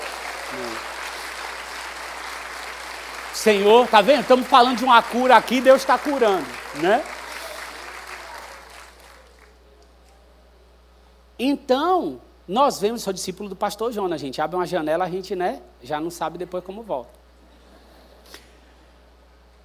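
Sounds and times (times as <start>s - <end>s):
congregation applauding: 0.0s - 9.6s
speech: 3.4s - 7.2s, 11.4s - 17.2s.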